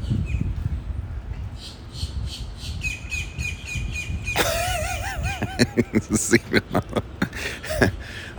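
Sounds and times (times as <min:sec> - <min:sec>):
low rumble of wind or surf at a Florida beach: 0:00.0 - 0:08.3
bird chirps at a Florida beach: 0:01.6 - 0:04.4
laughter: 0:04.4 - 0:08.3
speech: 0:05.7 - 0:08.0.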